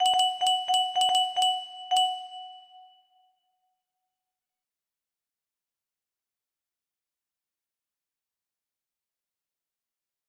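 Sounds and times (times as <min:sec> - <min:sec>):
video game jingle played on a music box: 0:00.0 - 0:03.0.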